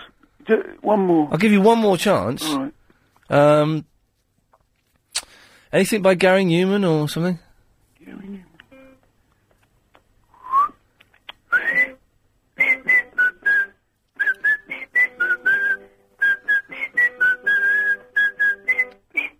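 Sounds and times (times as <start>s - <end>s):
speech: 0.5s - 3.9s, 5.7s - 7.4s
person whistling a tune: 10.4s - 10.8s, 11.5s - 12.0s, 12.6s - 19.3s.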